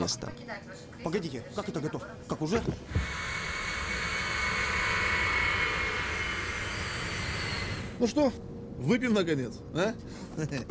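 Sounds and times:
speech: 0.0 - 3.4, 8.0 - 10.6
airplane engines roaring during takeoff: 2.6 - 8.1.

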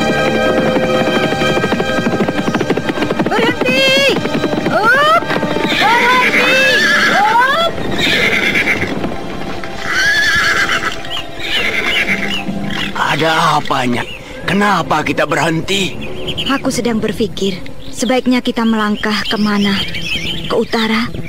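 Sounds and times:
horses of a band of robbers whinnying: 0.0 - 14.1
horses' hoofbeats: 0.0 - 16.7
speech: 13.6 - 21.2.

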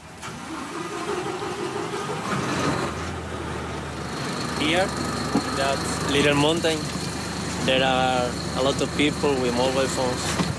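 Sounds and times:
police patrol boat engine on a coastal patrol near Algeciras: 0.0 - 10.5
speech: 4.6 - 7.0, 7.6 - 10.5.

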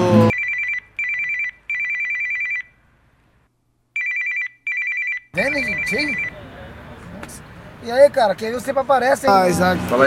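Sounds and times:
bright trilling electronic telephone ring as an outgoing call is placed: 0.3 - 2.7, 4.0 - 6.4
speech: 5.5 - 6.4, 7.3 - 10.0.

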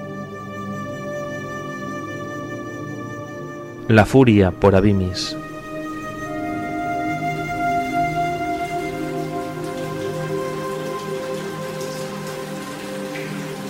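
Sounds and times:
sustained tones: 3.6 - 9.7
speech: 3.9 - 5.4
intermittent rain falling on a city: 5.2 - 13.6.

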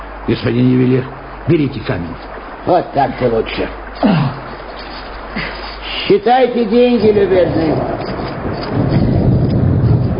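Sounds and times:
heavy rain in a thunderstorm at night: 0.0 - 10.1
heavy wind in a thunderstorm at night: 0.0 - 10.1
speech: 0.2 - 4.4, 6.1 - 7.9
deep thunder rumble in a thunderstorm at night: 7.1 - 10.1.

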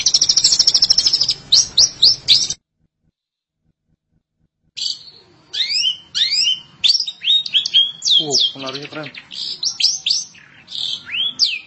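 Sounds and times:
Long-tailed Shrike song of slurred whistles and twittering: 0.0 - 2.6, 4.8 - 11.6.

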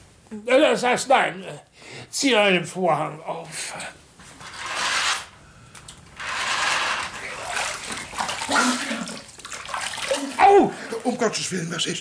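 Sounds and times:
speech: 0.3 - 4.0, 11.1 - 11.9
water splashing as someone washes: 6.4 - 11.5.

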